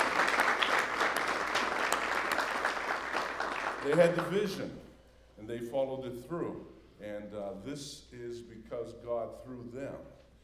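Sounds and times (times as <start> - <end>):
audience applause in appreciation of past divisional leaders: 0.0 - 4.5
speech: 3.8 - 10.2.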